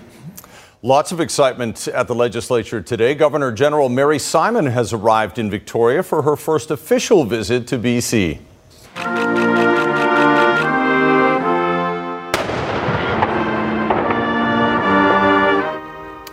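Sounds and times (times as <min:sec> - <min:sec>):
speech: 0:00.8 - 0:09.4
sustained tones: 0:09.0 - 0:16.3
cannon boom from a 21-gun vice-regal salute on the steps of a legislature: 0:12.3 - 0:15.7.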